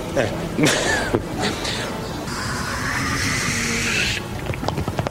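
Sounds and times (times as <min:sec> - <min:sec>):
speech: 0:00.2 - 0:01.7
voice imitating water running into a bidet: 0:02.3 - 0:05.0.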